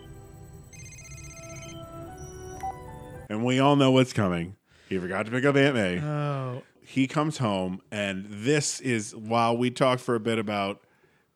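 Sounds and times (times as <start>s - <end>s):
phone ringing with electronic ringtone: 0.0s - 3.3s
speech: 3.3s - 10.8s.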